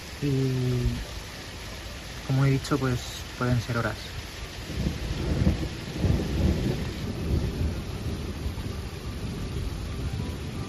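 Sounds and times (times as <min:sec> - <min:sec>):
heavy rain in a thunderstorm: 0:00.0 - 0:10.6
speech: 0:00.2 - 0:01.1, 0:02.3 - 0:05.6
deep rolling thunder: 0:04.5 - 0:10.6.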